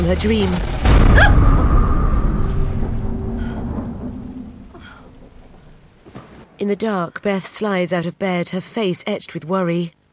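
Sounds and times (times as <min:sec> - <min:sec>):
speech: 0:00.0 - 0:01.6, 0:06.6 - 0:10.0
deep rolling rumble of thunder: 0:00.0 - 0:06.0
torrential heavy rain beating down at night: 0:00.0 - 0:06.5.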